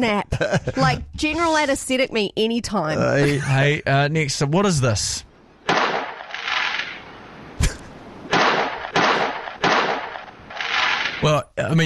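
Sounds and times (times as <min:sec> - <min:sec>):
speech: 0:00.0 - 0:05.3, 0:11.2 - 0:11.8
laughter: 0:00.2 - 0:01.8, 0:03.0 - 0:04.0
fireworks bangs with rumbling crackling tails: 0:05.6 - 0:07.6, 0:08.2 - 0:11.3.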